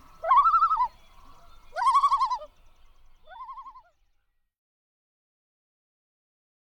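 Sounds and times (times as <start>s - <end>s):
common loon calling in laughing tremolo phrases: 0.0s - 2.5s.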